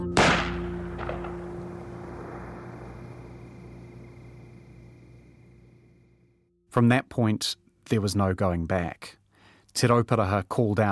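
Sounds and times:
gunshot from a weapon discharged by accident: 0:00.1 - 0:04.0
low hum: 0:00.2 - 0:09.6
speech: 0:06.8 - 0:09.2, 0:09.8 - 0:10.9.

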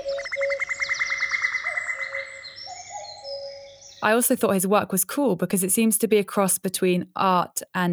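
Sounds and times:
sustained whistled notes: 0:00.0 - 0:04.0
birds calling in bright trills: 0:00.0 - 0:04.3
speech: 0:04.0 - 0:07.9.

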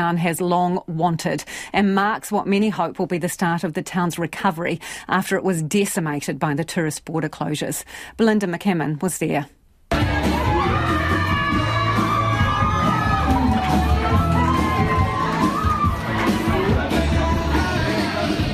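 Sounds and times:
speech: 0:00.0 - 0:10.2
crowd cheering and shouting in an airport arrivals hall: 0:09.9 - 0:18.5
overlapping voices: 0:09.9 - 0:18.5
excited yells and whoops: 0:10.0 - 0:16.5.

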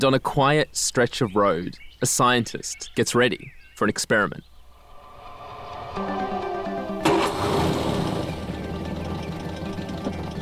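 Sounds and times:
speech: 0:00.0 - 0:04.5
old beat-up 1960s Ford Anglia car engine starting and idling on a quiet Danish country road: 0:04.7 - 0:10.4.

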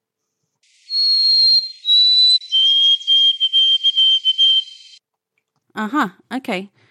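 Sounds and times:
songbird whistling song: 0:00.6 - 0:05.0
speech: 0:05.8 - 0:06.9.

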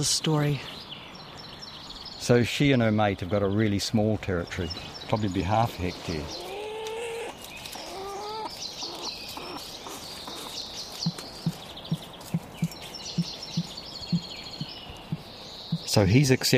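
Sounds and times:
speech: 0:00.0 - 0:00.8, 0:02.2 - 0:06.5, 0:16.0 - 0:16.5
faint higher bird calls: 0:04.6 - 0:16.4
male weka giving a deep call to his female: 0:06.2 - 0:16.0.

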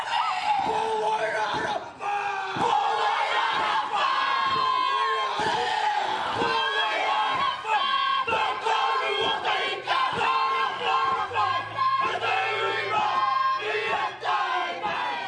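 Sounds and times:
schoolchildren chanting a haka in unison: 0:00.2 - 0:15.2
stamps in a haka war dance: 0:02.5 - 0:11.3.

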